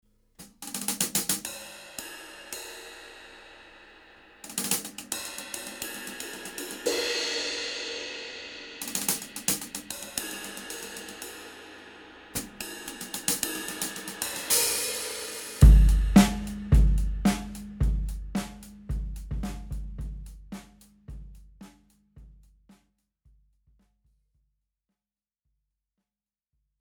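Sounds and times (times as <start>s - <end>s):
cymbals in a Turkish rhythm: 0.4s - 21.4s.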